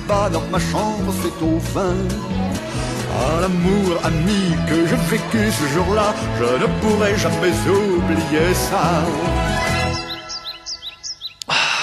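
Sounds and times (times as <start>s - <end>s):
speech: 0.1s - 9.6s
birds chirping: 8.1s - 11.8s.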